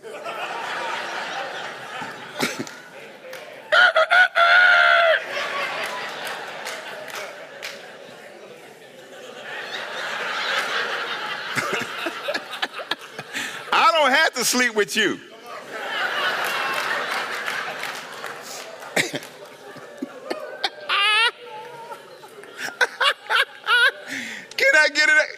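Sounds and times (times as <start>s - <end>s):
scattered laughter: 0.0s - 14.6s, 15.3s - 25.2s
noisy chatter: 0.0s - 25.3s
man imitating a rooster crowing: 3.7s - 5.2s
speech: 14.5s - 15.3s.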